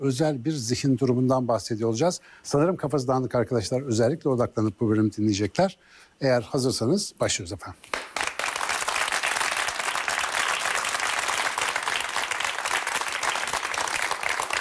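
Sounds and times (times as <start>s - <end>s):
speech: 0.0s - 8.0s
audience applauding: 7.9s - 14.5s.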